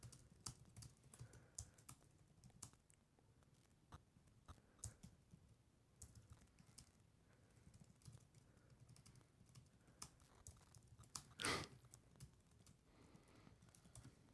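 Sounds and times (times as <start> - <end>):
typing on a computer keyboard: 0.0 - 2.8, 4.5 - 7.0, 7.6 - 12.8, 13.6 - 14.2.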